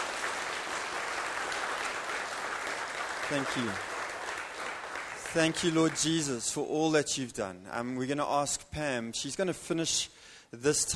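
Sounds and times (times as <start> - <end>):
worship congregation applauding: 0.0 - 6.6
speech: 3.3 - 3.9, 5.3 - 10.9.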